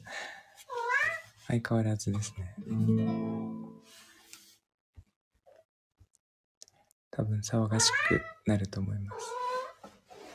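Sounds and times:
cat meowing: 0.7 - 1.3, 7.8 - 8.4, 9.1 - 9.8
speech: 1.5 - 3.4, 7.2 - 9.4.

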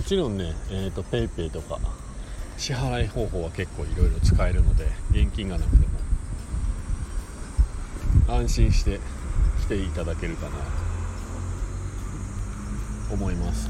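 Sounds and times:
car traffic on a national road: 0.0 - 13.6
cicadas buzzing outdoors: 0.0 - 13.6
speech: 0.1 - 2.0, 2.6 - 5.9, 8.3 - 10.8, 13.1 - 13.6
low rumbling wind noise: 2.9 - 10.8.

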